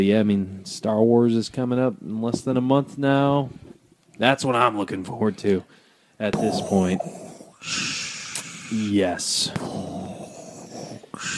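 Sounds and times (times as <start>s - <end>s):
speech: 0.0s - 7.9s, 8.7s - 10.2s, 11.2s - 11.3s
voice imitating heavy respirator breathing: 6.4s - 11.3s.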